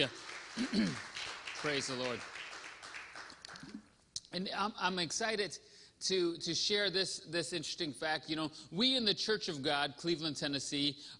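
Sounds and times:
speech: 0:00.0 - 0:02.3, 0:04.3 - 0:11.1
audience clapping: 0:00.0 - 0:03.9.

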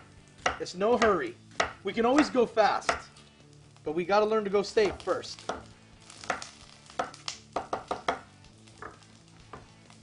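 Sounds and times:
knife chopping through an onion on a cutting board: 0:00.4 - 0:03.1, 0:04.8 - 0:09.7
speech: 0:00.6 - 0:03.1, 0:03.8 - 0:05.7.

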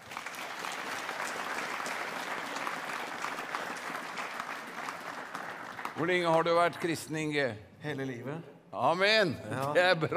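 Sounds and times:
audience applause: 0:00.0 - 0:06.6
speech: 0:06.0 - 0:10.1.

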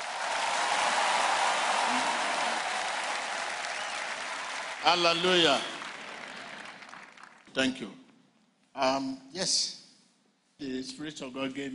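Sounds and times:
congregation clapping hands in applause: 0:00.0 - 0:07.6
speech: 0:04.8 - 0:05.7, 0:07.6 - 0:08.0, 0:08.8 - 0:09.8, 0:10.6 - 0:11.7.

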